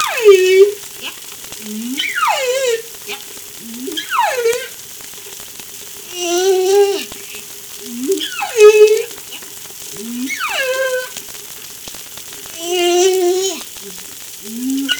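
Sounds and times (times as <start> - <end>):
whale calls with long rich tonal moans: 0.0 - 4.8, 6.1 - 7.2, 7.8 - 11.2, 12.5 - 14.9
crackling hissing underwater background: 0.0 - 14.9.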